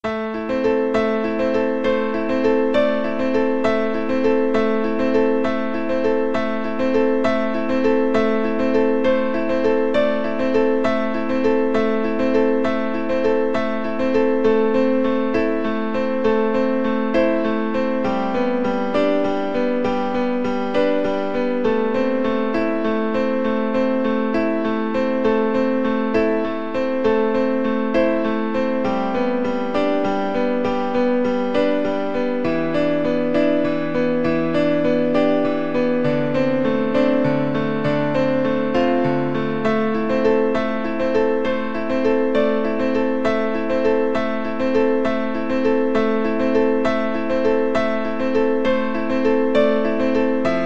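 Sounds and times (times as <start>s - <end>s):
piano: 0.0s - 50.6s.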